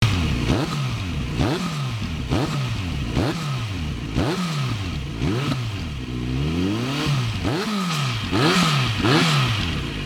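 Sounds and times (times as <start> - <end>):
Z900RS exhaust: 0.0 - 10.0.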